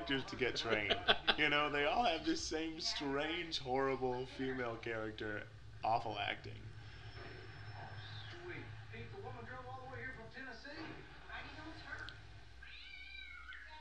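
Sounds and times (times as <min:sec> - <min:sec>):
speech: 0:00.1 - 0:06.7
laughter: 0:00.4 - 0:01.7
low steady engine-like hum: 0:04.8 - 0:10.4
cat meowing: 0:12.6 - 0:13.7.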